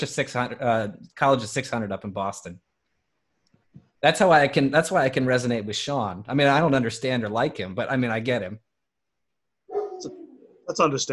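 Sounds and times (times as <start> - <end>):
speech: 0.0 - 2.7, 4.0 - 8.6, 10.0 - 11.1
pet dog giving a drawn-out tonal bark: 9.7 - 10.3.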